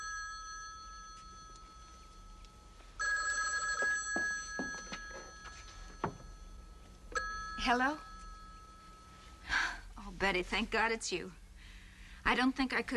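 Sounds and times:
telephone bell ringing in a home: 0.0 - 9.5
speech: 7.6 - 8.1, 10.2 - 11.4, 12.2 - 12.9.

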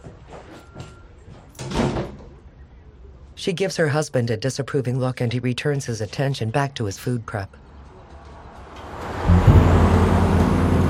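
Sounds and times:
speech: 3.4 - 7.6
truck engine rumble on a remote road: 7.6 - 10.8.

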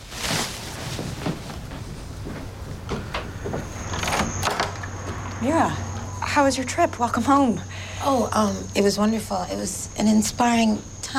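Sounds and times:
steady low hum: 0.4 - 11.1
faint high whine: 1.9 - 11.1
front door latch and frame rattling: 2.8 - 5.4
speech: 5.4 - 5.8, 6.4 - 11.1.

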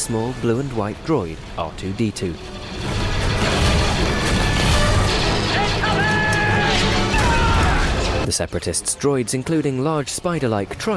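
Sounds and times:
speech: 0.0 - 2.9, 8.3 - 10.9
cannons firing in battle: 2.4 - 8.3
crashing impacts in battle: 2.4 - 8.3.

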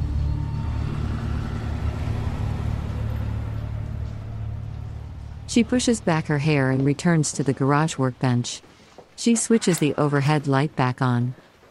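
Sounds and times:
car engine rumbling while reversing out of a driveway and driving away: 0.0 - 8.4
speech: 5.5 - 11.5.

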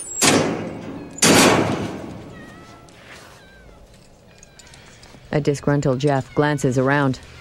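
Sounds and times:
kennel cage door slamming shut: 0.0 - 2.4
speech: 5.3 - 7.3.

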